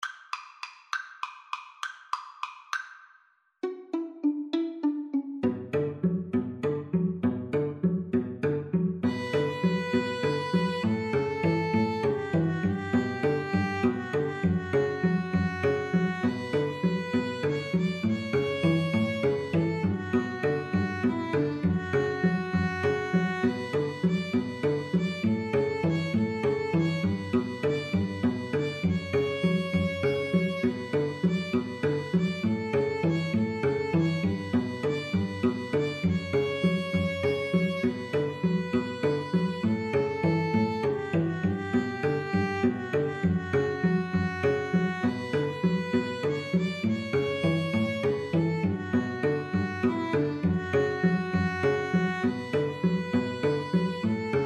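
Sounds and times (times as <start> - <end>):
Spanish violin trio playing: 3.7 - 54.4.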